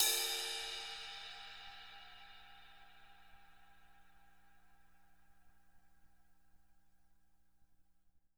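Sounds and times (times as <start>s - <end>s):
crash cymbal: 0.0s - 5.0s.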